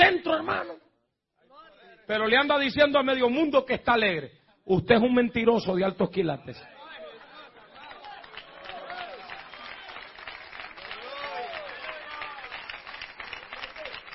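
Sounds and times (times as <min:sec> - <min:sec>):
speech: 0:02.1 - 0:06.8
audience applause at a religious gathering: 0:07.0 - 0:14.1.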